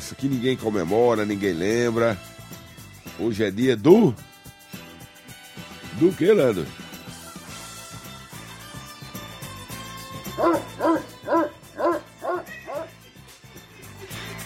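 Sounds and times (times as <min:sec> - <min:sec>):
music: 0:00.0 - 0:14.4
speech: 0:00.1 - 0:02.3, 0:03.2 - 0:04.3, 0:06.0 - 0:06.8
dog barking: 0:10.4 - 0:12.9.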